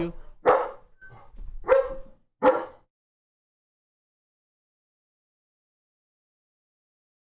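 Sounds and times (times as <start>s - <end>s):
speech: 0.0s - 0.2s
puppy barking: 0.4s - 2.9s.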